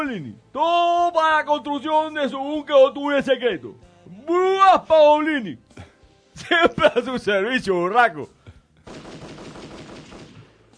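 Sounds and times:
speech: 0.1 - 0.8, 1.5 - 5.7, 6.4 - 8.4
gunshots: 8.9 - 10.7
rapid machine-gun fire: 8.9 - 10.7.

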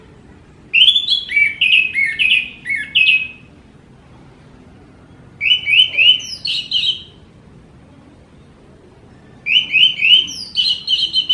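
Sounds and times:
orange-headed thrush singing clear slurred whistled notes: 0.7 - 3.5, 5.4 - 7.3, 9.4 - 11.3.

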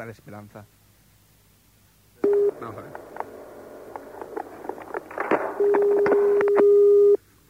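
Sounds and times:
speech: 0.0 - 0.8, 2.6 - 3.2
telephone ringing tone on a call to a helpline: 2.2 - 7.2
clicks and clatter: 2.3 - 6.7.

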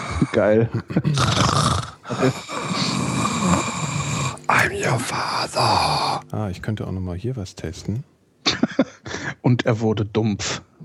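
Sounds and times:
speech: 0.2 - 1.6, 2.2 - 2.6, 4.6 - 8.9, 9.5 - 10.6
heavy rasping snore-like breathing: 1.1 - 6.3.

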